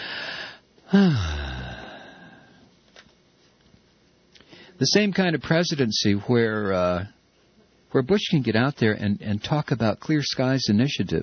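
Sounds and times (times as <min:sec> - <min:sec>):
man taking a deep wheezy breath and long exhale: 0:00.0 - 0:02.6, 0:04.4 - 0:04.8
speech: 0:00.9 - 0:01.4, 0:04.8 - 0:07.2, 0:07.9 - 0:11.2.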